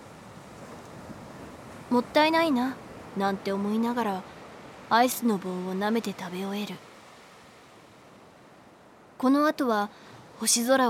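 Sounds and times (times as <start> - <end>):
light breezy hiss: 0.0 - 10.8
ocean surf washing against a seashore at night: 0.0 - 10.8
speech: 1.9 - 4.3, 4.9 - 6.9, 9.2 - 10.8.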